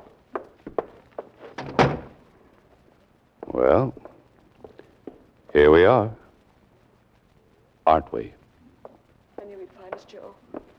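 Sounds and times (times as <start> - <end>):
door being pushed shut: 1.4 - 2.2
speech: 3.6 - 4.0, 5.5 - 6.2, 7.9 - 8.4.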